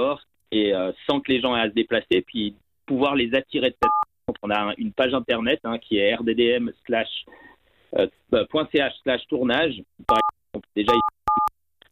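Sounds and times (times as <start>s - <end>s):
speech: 0.0s - 10.2s, 10.8s - 11.1s
telephone keypad tones from pressed buttons: 10.1s - 10.3s, 10.9s - 11.5s.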